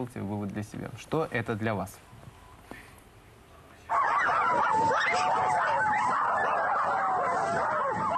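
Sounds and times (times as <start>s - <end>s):
speech: 0.0s - 2.1s
group of children imitating howling dogs or wolves: 3.9s - 8.1s.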